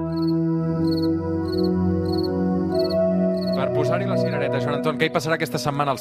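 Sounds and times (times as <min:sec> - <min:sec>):
crickets chirping: 0:00.1 - 0:03.6
speech: 0:03.8 - 0:05.9.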